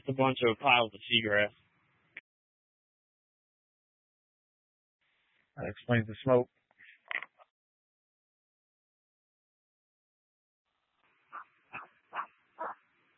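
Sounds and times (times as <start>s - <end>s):
speech: 0.1s - 1.6s, 5.6s - 6.6s
dog barking: 11.3s - 12.8s.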